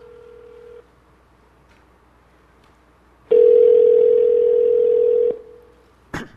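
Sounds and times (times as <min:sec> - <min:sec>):
phone ringback tone on an iPhone calling a mobile number: 0:00.0 - 0:00.8, 0:03.3 - 0:05.6.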